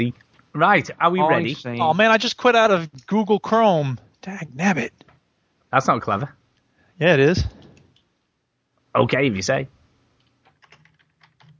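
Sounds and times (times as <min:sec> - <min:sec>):
speech: 0:00.0 - 0:05.0, 0:05.7 - 0:06.4, 0:07.0 - 0:07.6, 0:09.0 - 0:09.8
faint steady hum: 0:00.0 - 0:11.5
typing on a computer keyboard: 0:10.4 - 0:11.5.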